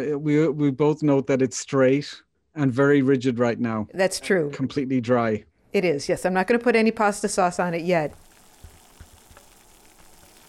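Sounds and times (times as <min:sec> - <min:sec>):
speech: 0:00.0 - 0:08.2
water starting to boil in a pot: 0:06.4 - 0:10.4.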